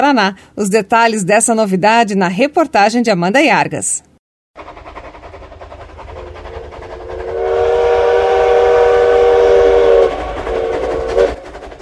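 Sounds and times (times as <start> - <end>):
speech: 0.0 - 4.1
tourist steam train rumbling along the tracks between Morretes and Antonina: 4.6 - 11.8
tourist steam locomotive whistle in Paraná Brazil: 6.1 - 11.5.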